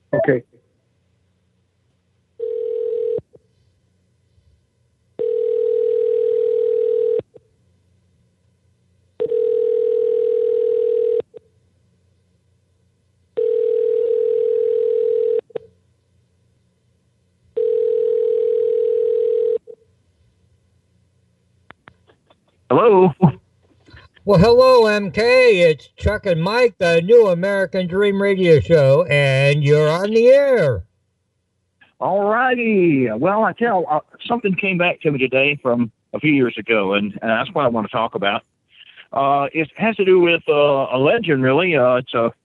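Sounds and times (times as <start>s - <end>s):
speech: 0.1s - 0.6s, 24.3s - 30.9s, 32.0s - 38.5s, 39.1s - 42.4s
telephone ringback tone from a call being placed: 2.4s - 3.2s, 5.2s - 7.2s, 9.2s - 11.2s, 13.4s - 15.4s, 17.6s - 19.6s.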